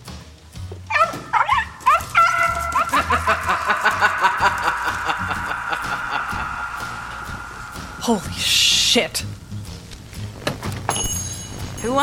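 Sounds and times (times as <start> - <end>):
female puppy barking in excited high-pitched bursts: 0.9 - 2.9
laughter: 2.3 - 8.2
speech: 8.1 - 9.4, 11.8 - 12.0.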